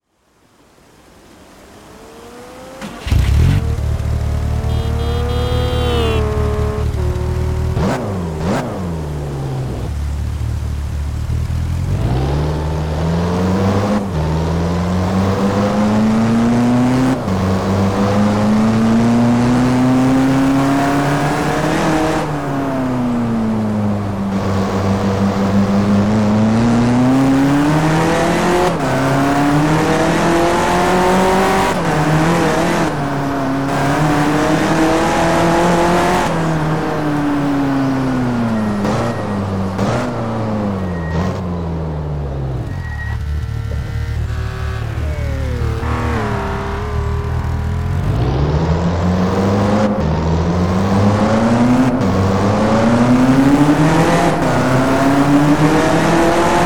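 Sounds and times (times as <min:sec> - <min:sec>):
BMW 2002 Turbo car engine: 0:00.0 - 0:56.6.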